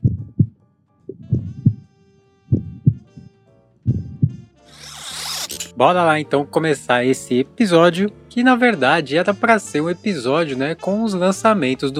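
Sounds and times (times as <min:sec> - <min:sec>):
deep booming heartbeat in lub-dub pairs: 0:00.0 - 0:01.9, 0:02.5 - 0:03.3, 0:03.9 - 0:04.4
speech: 0:05.8 - 0:11.9.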